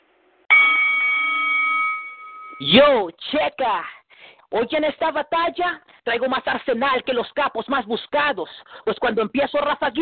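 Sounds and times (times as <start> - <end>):
single bright bell ringing to start a rap battle: 0.5 - 2.9
speech: 2.6 - 10.0.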